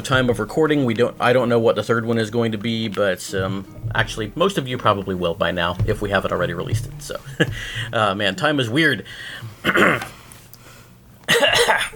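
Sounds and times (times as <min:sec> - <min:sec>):
speech: 0:00.0 - 0:10.2
harsh coughs: 0:09.6 - 0:10.1, 0:11.3 - 0:11.9.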